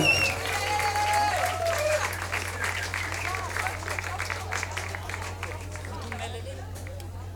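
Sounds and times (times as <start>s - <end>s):
whistling or cheering: 0.0s - 3.8s
crowd applauding: 0.0s - 7.2s.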